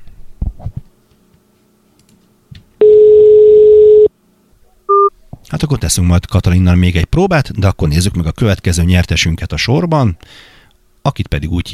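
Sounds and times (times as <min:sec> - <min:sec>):
outgoing telephone call ringing tone: 0:02.8 - 0:04.1
speech: 0:05.6 - 0:11.7.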